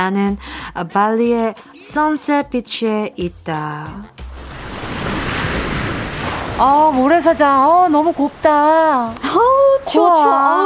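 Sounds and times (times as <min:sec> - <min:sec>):
speech: 0:00.0 - 0:04.1, 0:06.6 - 0:10.6
tropical ocean waves washing onto a beach: 0:04.3 - 0:10.6.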